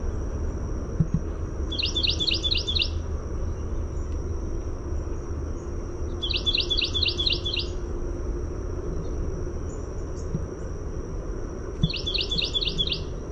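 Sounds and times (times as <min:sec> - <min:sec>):
shrill insect drone: 0:00.0 - 0:13.2
Carolina wren singing quick strings of repeated two-part notes: 0:01.0 - 0:03.0, 0:06.2 - 0:07.8, 0:11.8 - 0:13.1.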